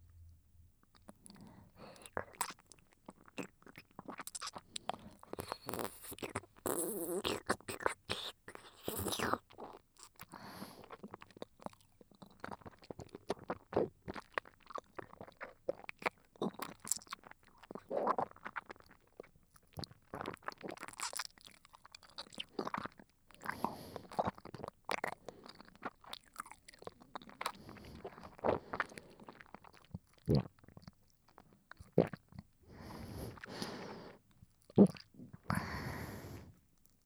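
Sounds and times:
close soft chewing and eating beside the ear: 0.8s - 37.0s.

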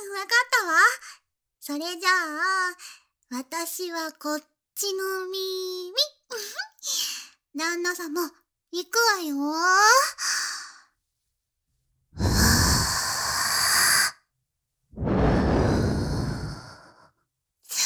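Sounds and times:
speech: 0.2s - 10.4s
soft breathy blowing into the ear: 12.2s - 14.1s, 14.9s - 17.0s.

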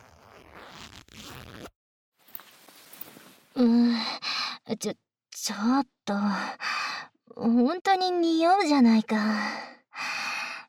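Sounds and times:
trouser zipper being pulled down: 0.0s - 3.4s
soft rustling of fabric: 2.2s - 3.6s
speech: 3.6s - 6.6s, 7.3s - 9.7s.

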